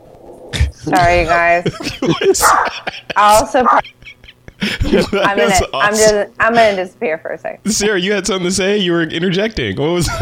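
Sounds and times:
laughter: 0.6 - 6.9, 7.7 - 10.2
speech: 0.8 - 4.0, 4.6 - 10.2
dog barking with high strained yelps: 2.4 - 2.8.

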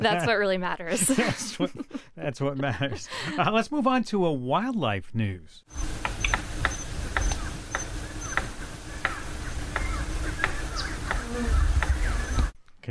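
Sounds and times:
laughter: 0.0 - 3.6
speech: 0.0 - 6.1
palm cockatoo drumming with sharp woody taps: 5.8 - 12.5
faint bird chirp: 5.8 - 12.6.

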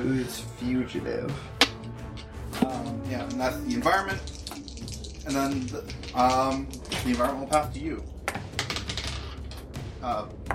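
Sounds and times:
speech: 0.0 - 8.1, 10.0 - 10.5
dice clattering across a hard table during a tabletop game: 2.6 - 9.7.

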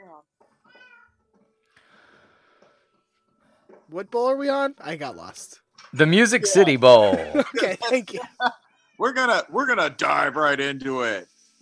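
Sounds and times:
cat meowing: 0.7 - 1.1
speech: 3.9 - 11.5
noisy crowd-like chatter: 6.0 - 7.7
laughter: 6.0 - 8.5.

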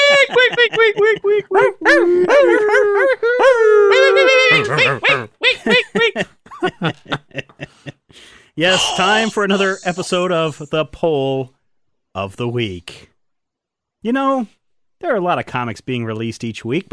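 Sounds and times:
laughter: 0.0 - 8.0, 8.7 - 10.7
speech: 0.7 - 3.3, 8.6 - 11.6, 12.2 - 13.1, 14.0 - 16.9
dog howling: 1.4 - 5.4.

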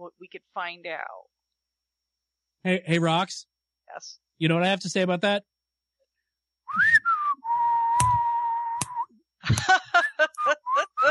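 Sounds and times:
speech: 0.3 - 1.4, 2.6 - 5.5, 9.4 - 9.8
person whistling a tune: 6.7 - 9.1, 10.3 - 11.1
laughter: 9.4 - 11.1.

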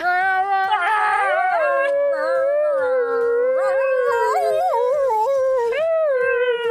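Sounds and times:
dog howling like a husky: 0.0 - 6.6.

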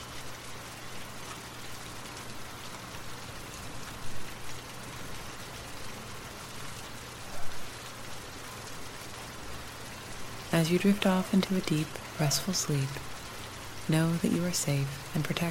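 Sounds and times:
steady rain falling: 0.0 - 15.4
speech: 10.6 - 13.2, 13.9 - 15.4.

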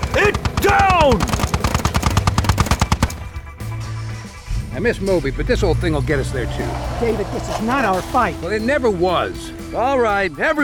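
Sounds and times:
chain gun firing in a battle scene: 0.0 - 3.4
speech: 0.2 - 1.3, 4.8 - 10.6
steady low drone: 3.5 - 10.0.

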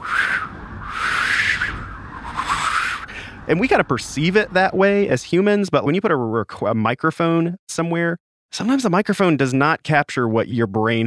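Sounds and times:
voice imitating whistling wind: 0.0 - 3.4
speech: 3.5 - 11.0.

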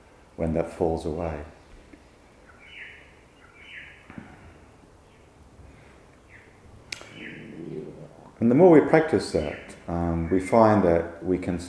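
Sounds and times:
soft steady hiss: 0.0 - 11.6
speech: 0.4 - 1.6, 8.5 - 11.6
short rising bird chirps: 2.4 - 4.1, 6.2 - 8.4.

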